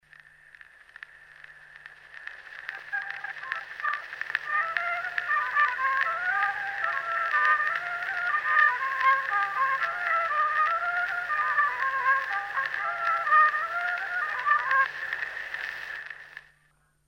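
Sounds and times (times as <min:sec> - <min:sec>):
old folk waltz on violin: 0:03.4 - 0:14.9.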